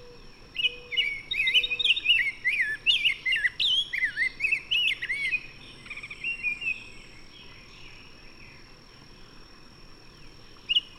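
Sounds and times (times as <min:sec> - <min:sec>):
bird song with rapid varied warble of twisting whistled phrases: 0:00.0 - 0:08.6.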